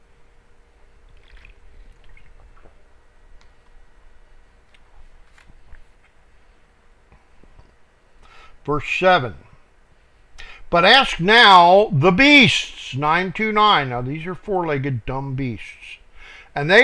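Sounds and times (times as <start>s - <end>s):
steady hiss: 0.0s - 16.8s
speaker sipping and swallowing a drink of water: 1.1s - 3.0s
speech: 8.7s - 9.4s, 10.7s - 16.0s, 16.6s - 16.8s.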